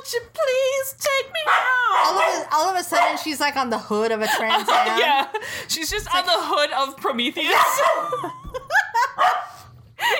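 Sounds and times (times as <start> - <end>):
speech: 0.0 - 8.7
dog barking and yipping: 1.4 - 3.4, 4.6 - 5.1, 7.5 - 8.2, 9.1 - 9.6
laughter: 4.2 - 5.6, 7.5 - 9.2.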